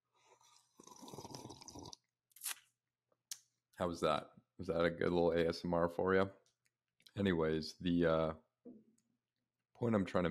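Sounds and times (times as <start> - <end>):
slurping sip of hot coffee: 0.2 - 2.6
speech: 3.8 - 6.4, 7.2 - 8.4, 9.8 - 10.2.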